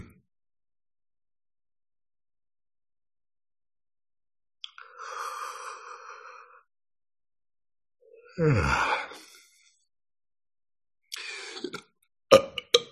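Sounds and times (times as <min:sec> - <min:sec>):
speech: 0:08.4 - 0:09.2
person belching: 0:11.6 - 0:12.9.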